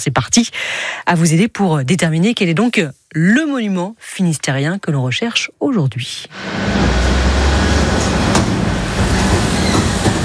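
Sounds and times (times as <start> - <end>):
speech: 0.0 - 7.2
garbage truck engine droning through deserted town streets: 6.3 - 10.2
road noise: 6.3 - 10.2.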